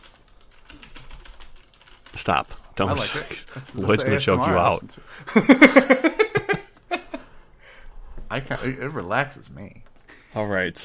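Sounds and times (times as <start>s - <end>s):
typing on a mechanical computer keyboard: 0.0s - 2.8s
speech: 2.2s - 6.2s, 8.3s - 10.8s
laughter: 5.2s - 7.3s.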